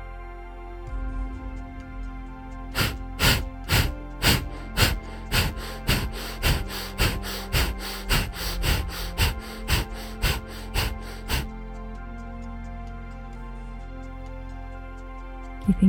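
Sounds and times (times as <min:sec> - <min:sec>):
breath of fire forceful rhythmic exhales through the nose during meditation: 0:02.7 - 0:12.3.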